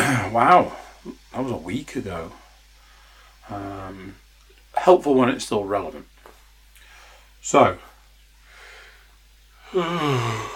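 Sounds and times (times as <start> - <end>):
speech: 0.4 - 2.4, 3.5 - 4.2, 4.8 - 6.1, 7.4 - 7.9, 9.7 - 10.5
single exaggerated yawn with voiced groan: 9.6 - 10.5.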